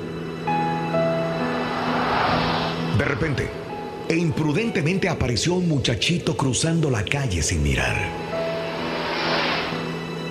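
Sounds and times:
sports car speeding past: 0.4 - 4.1, 8.2 - 10.2
speech: 3.2 - 8.2.

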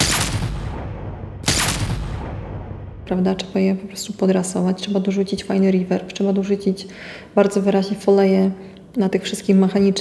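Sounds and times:
pistol gunshots: 0.0 - 2.7
speech: 3.1 - 9.9.

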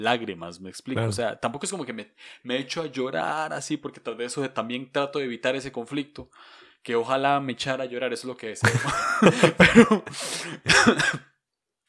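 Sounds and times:
speech: 0.0 - 11.3
laughter: 8.6 - 10.1
person coughing: 9.4 - 11.3.

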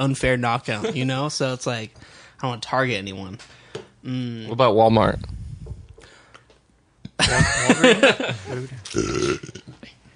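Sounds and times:
speech: 0.0 - 5.4, 7.2 - 9.8
long gurgling burp into the microphone: 8.9 - 9.8.

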